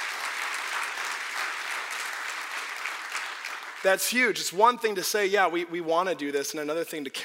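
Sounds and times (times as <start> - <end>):
audience applause: 0.0 - 4.3
speech: 3.8 - 7.2.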